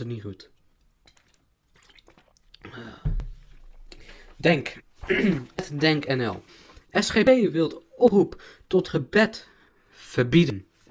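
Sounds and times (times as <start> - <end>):
speech: 0.0 - 0.6, 2.7 - 3.1, 4.4 - 10.7
soft wet mouth sounds: 1.0 - 4.1
swallow: 1.1 - 4.3
sip of water: 1.7 - 4.4
quiet breathing: 2.6 - 4.4, 6.4 - 6.9, 8.3 - 8.7, 9.4 - 10.0.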